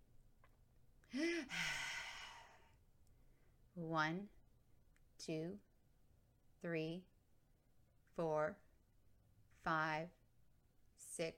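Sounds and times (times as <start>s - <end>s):
speech: 1.1s - 1.8s, 3.8s - 4.4s, 5.2s - 5.7s, 6.6s - 7.1s, 8.2s - 8.6s, 9.6s - 10.2s, 11.0s - 11.3s
slow labored breathing from a woman on an oxygen mask: 1.2s - 2.8s.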